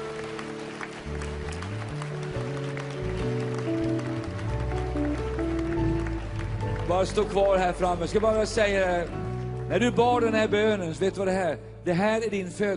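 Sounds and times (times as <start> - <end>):
crowd at a Christian tent meeting clapping: 0.0 - 9.6
loud sustained keyboard chords: 0.0 - 11.9
speech: 6.9 - 12.7.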